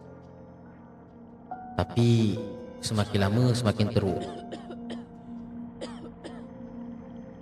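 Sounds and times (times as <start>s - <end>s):
speech: 1.9s - 4.4s
sick woman coughing in harsh hacking bursts: 4.2s - 5.1s, 5.8s - 6.5s.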